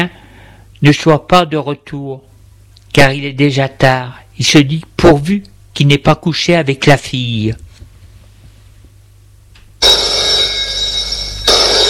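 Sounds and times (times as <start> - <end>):
speech: 0.0 - 0.2, 0.8 - 2.3, 2.9 - 7.6
telephone bell ringing in a home: 9.8 - 11.8.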